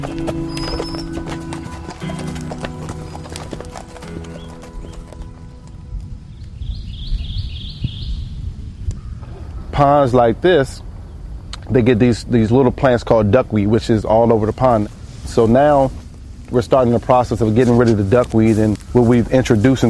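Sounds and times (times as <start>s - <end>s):
speech: 0.0s - 0.8s, 9.8s - 10.9s, 11.7s - 19.8s
horse hooves clip-clopping on a trail ride in nature: 0.0s - 6.2s, 14.7s - 19.8s
brief whinny-like tone: 0.4s - 4.6s
faint bird chirps: 6.3s - 9.8s.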